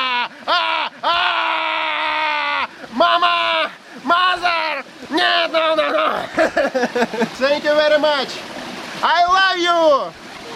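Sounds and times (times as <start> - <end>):
man screaming going down a steep slide: 0.0 - 6.3
laughter: 5.7 - 7.4
speech: 6.8 - 10.2.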